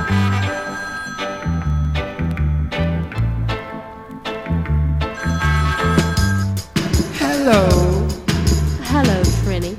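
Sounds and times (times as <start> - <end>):
telephone bell ringing: 0.0 - 2.2, 5.2 - 6.6
loud bass-heavy rhythmic music track: 1.4 - 3.8, 4.5 - 9.7
speech: 7.5 - 7.8.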